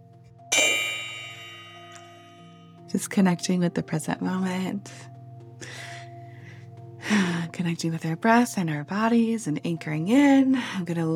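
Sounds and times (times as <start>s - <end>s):
single bell struck: 0.5s - 2.5s
speech: 2.9s - 5.1s, 7.6s - 11.1s.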